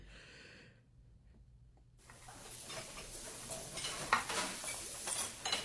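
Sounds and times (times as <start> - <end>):
faint sizzle: 2.0 - 5.6
spoon stirring in a pot: 2.1 - 5.6.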